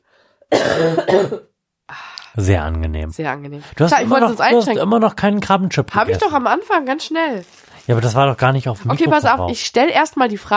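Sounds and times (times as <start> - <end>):
person coughing: 0.5 - 1.5
speech: 0.5 - 10.5.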